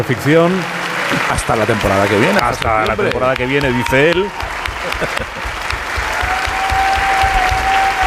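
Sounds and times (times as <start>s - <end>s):
speech: 0.0s - 5.6s
audience applause for an interviewee: 0.0s - 8.0s
laughter: 1.1s - 6.2s.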